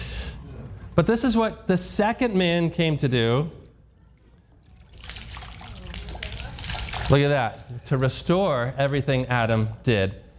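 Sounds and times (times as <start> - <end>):
speech: 1.0 - 3.6, 7.1 - 10.2
water pouring and trickling onto a hard floor: 4.6 - 8.2.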